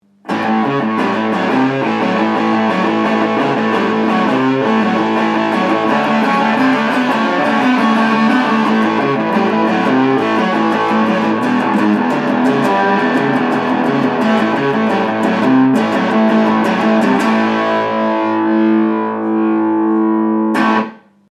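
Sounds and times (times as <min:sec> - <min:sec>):
rock and roll music: 0:00.3 - 0:21.0.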